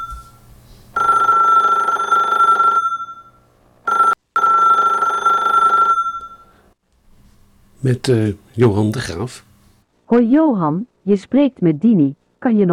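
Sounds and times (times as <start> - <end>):
telephone ringing: 0.0 - 0.4, 1.0 - 6.6
speech: 7.8 - 9.5, 10.1 - 12.7.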